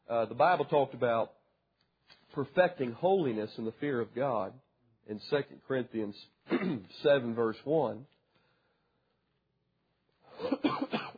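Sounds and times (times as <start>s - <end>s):
speech: 0.1s - 1.4s, 2.3s - 8.2s
throaty coughs: 6.5s - 6.9s, 10.3s - 11.1s.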